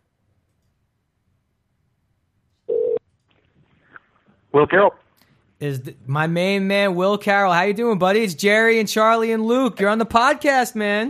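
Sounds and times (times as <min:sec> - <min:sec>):
steady electronic ringing tone on an outgoing phone call: 0:02.7 - 0:03.0
speech: 0:04.6 - 0:05.0, 0:05.6 - 0:11.0.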